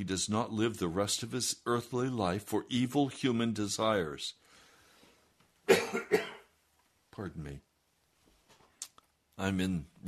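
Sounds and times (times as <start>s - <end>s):
speech: 0.0s - 4.4s, 5.7s - 6.3s, 7.2s - 7.7s, 9.4s - 10.0s
harsh chesty coughs: 5.6s - 6.5s.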